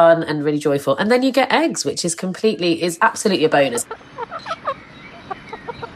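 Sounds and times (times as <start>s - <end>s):
speech: 0.0s - 4.7s
faint outdoor background: 0.0s - 5.9s
chickens clucking while scratching up a garden lawn: 2.6s - 5.9s.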